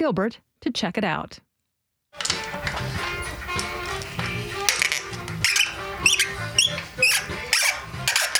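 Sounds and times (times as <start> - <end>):
speech: 0.0 - 1.4
metallic ticks and rattles of bicycle parts being turned and pried: 2.2 - 8.3
squeaky stuck rear derailleur of a street bike being removed at a bike shop: 2.2 - 8.3.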